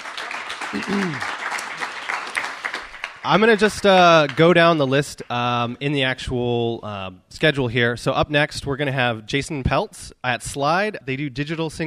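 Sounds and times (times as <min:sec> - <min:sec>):
crowd applauding: 0:00.0 - 0:05.3
person cheering: 0:00.7 - 0:01.3
speech: 0:00.7 - 0:01.4, 0:03.2 - 0:11.8.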